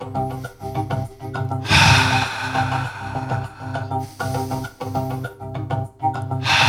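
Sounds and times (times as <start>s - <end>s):
soft music: 0.0s - 6.6s
slow deep breathing during a guided breathing exercise: 0.2s - 5.2s, 6.4s - 6.6s.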